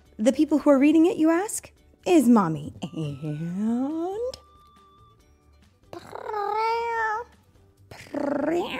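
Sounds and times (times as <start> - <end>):
speech: 0.2 - 4.4, 8.2 - 8.7
child imitating cat meows: 5.9 - 7.3.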